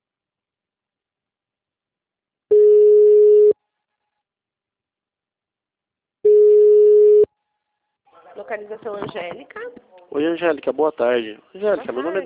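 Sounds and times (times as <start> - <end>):
telephone tone while a call is transferred on a company phone line: 2.5 - 3.6, 6.3 - 7.3
speech: 8.5 - 12.2.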